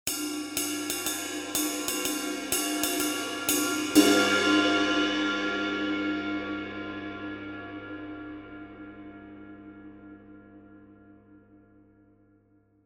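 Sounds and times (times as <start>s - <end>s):
20in crash ride cymbal: 0.1s - 6.8s.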